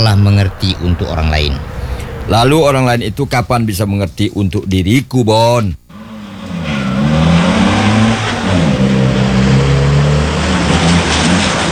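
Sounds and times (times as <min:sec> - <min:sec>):
car engine revving as the car speeds past: 0:00.0 - 0:03.5, 0:05.9 - 0:11.6
speech: 0:00.0 - 0:05.8.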